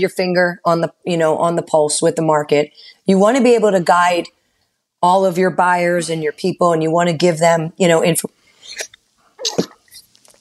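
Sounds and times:
speech: 0:00.0 - 0:04.4, 0:05.0 - 0:09.7
faint breaths: 0:02.7 - 0:03.1, 0:08.3 - 0:09.4
person sneezing: 0:08.6 - 0:10.0
rustling: 0:08.8 - 0:10.4.

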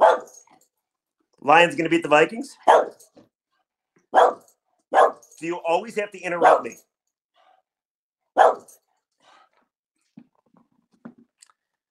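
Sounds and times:
dog barking: 0:00.0 - 0:00.4, 0:02.6 - 0:03.0, 0:04.1 - 0:05.3, 0:06.4 - 0:06.8, 0:08.4 - 0:08.8
speech: 0:01.4 - 0:03.0, 0:05.4 - 0:06.9.

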